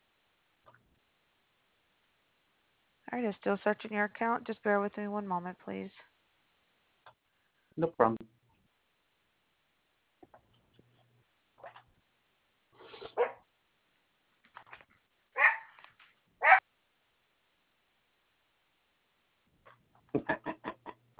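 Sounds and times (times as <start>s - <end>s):
speech: 3.1s - 6.1s, 7.8s - 8.3s
dogs barking: 13.1s - 13.5s, 15.4s - 15.8s, 16.4s - 16.6s.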